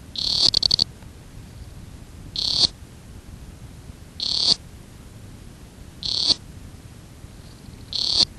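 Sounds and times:
Blommersia domerguei frog calling: 0:00.1 - 0:00.9, 0:02.3 - 0:02.8, 0:04.2 - 0:04.6, 0:06.0 - 0:06.4, 0:07.5 - 0:08.3.

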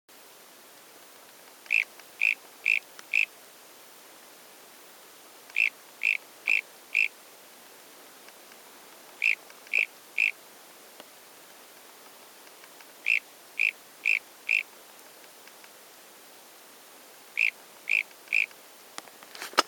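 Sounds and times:
Pristimantis nervicus calling: 0:01.6 - 0:03.4, 0:05.5 - 0:07.2, 0:09.2 - 0:10.4, 0:12.9 - 0:14.7, 0:17.3 - 0:18.5.

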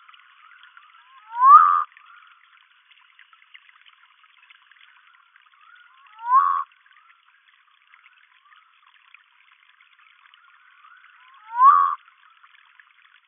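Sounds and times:
Humayun's night frog calling, Nyctibatrachus humayuni: 0:00.8 - 0:02.4, 0:05.6 - 0:06.7, 0:10.5 - 0:12.1.

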